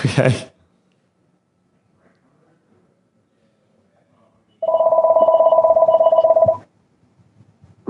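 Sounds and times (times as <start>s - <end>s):
speech: 0.0s - 0.5s
telephone ringing with a buzzy warbling pulse: 4.6s - 6.6s.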